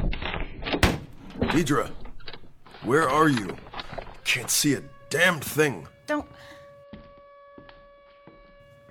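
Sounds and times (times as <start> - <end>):
speech: 1.5 - 2.0, 2.8 - 3.6, 4.3 - 6.6
siren droning on a steady pitch: 2.6 - 8.8.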